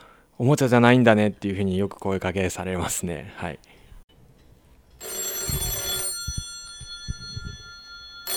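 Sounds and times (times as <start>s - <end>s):
speech: 0.4s - 3.8s
Showa-era rotary dial telephone bell ringing: 5.0s - 8.3s.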